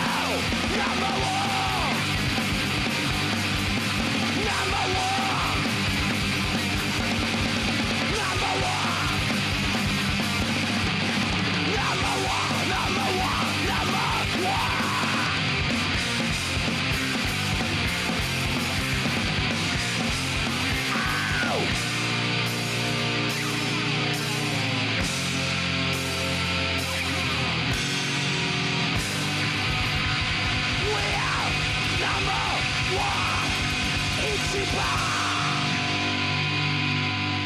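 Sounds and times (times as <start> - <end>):
large crowd screaming and yelling: 0.0 - 16.6, 17.2 - 37.4.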